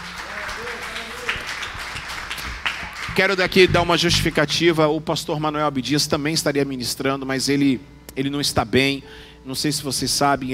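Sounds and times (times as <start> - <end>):
crowd applauding: 0.0 - 4.4
speech: 3.2 - 10.5.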